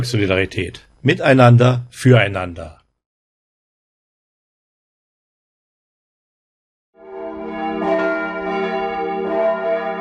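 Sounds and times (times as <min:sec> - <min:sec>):
speech: 0:00.0 - 0:02.8
town church bells ringing a peal calling to a church service: 0:07.0 - 0:09.9.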